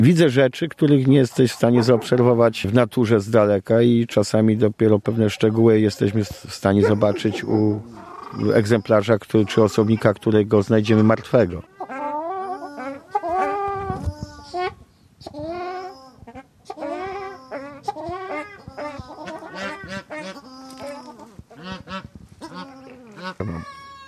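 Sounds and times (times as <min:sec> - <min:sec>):
speech: 0:00.0 - 0:12.0, 0:15.2 - 0:15.5
zebra finches calling: 0:05.1 - 0:24.0.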